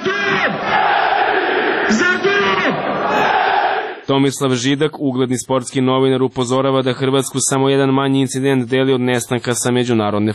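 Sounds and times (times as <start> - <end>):
former Croatian national player calling out: 0.0 - 0.6, 1.9 - 2.8
large stadium crowd chanting loudly in unison: 0.0 - 4.1
speech: 4.1 - 10.3.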